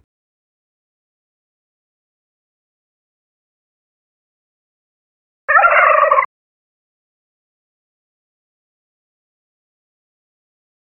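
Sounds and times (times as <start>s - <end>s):
hen: 5.5s - 6.3s
turkey: 5.5s - 6.3s.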